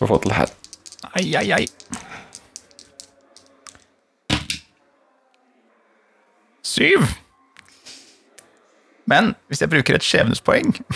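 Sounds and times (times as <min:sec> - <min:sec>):
speech: 0:00.0 - 0:00.6, 0:01.2 - 0:01.9, 0:06.8 - 0:07.2, 0:09.1 - 0:10.9
two dice rolling across a hard surface: 0:00.0 - 0:04.7.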